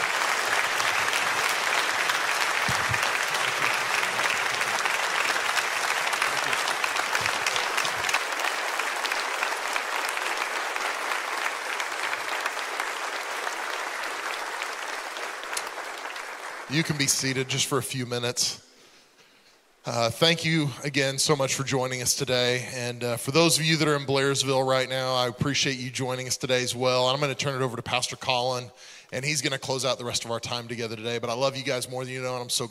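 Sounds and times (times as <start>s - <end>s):
large audience applause: 0.0s - 17.5s
speech: 16.8s - 18.6s, 19.9s - 32.7s.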